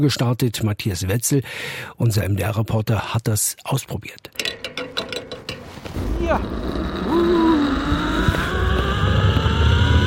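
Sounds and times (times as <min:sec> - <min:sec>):
speech: 0:00.0 - 0:04.9
zipline trolley whirring along a cable over 200 metres long above a reservoir: 0:06.0 - 0:10.0.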